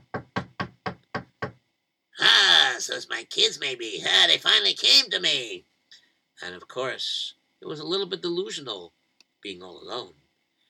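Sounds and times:
knocking on a wooden door: 0.0s - 1.6s
speech: 2.9s - 5.7s, 6.4s - 10.2s.

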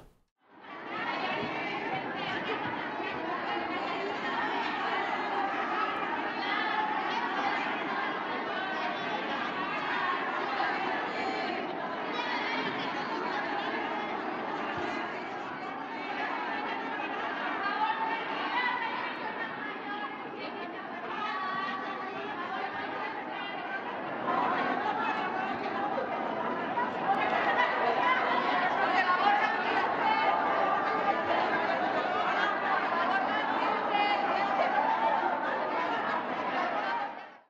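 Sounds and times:
large crowd of women chanting in unison: 0.0s - 37.4s
laughter: 20.7s - 37.4s.

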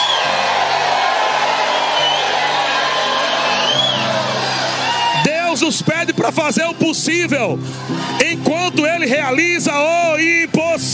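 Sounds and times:
whooping cries: 0.0s - 5.7s
large audience shouting and cheering: 0.0s - 9.6s
speech: 6.3s - 10.9s.

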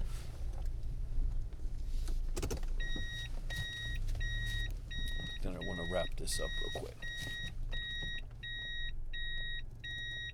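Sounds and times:
car engine rumble inside the vehicle while parking: 0.0s - 10.3s
speech: 5.9s - 7.4s.

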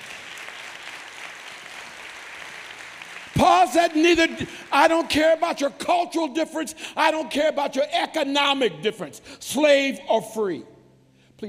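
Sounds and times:
church audience clapping during a sermon: 0.0s - 5.7s
speech: 3.4s - 10.7s.

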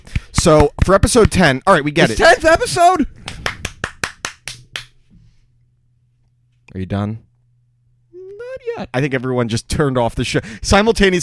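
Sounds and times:
sharp hand claps with slight room echo: 0.0s - 1.5s, 3.2s - 5.0s
speech: 0.4s - 3.3s, 6.7s - 7.3s, 8.5s - 11.2s.

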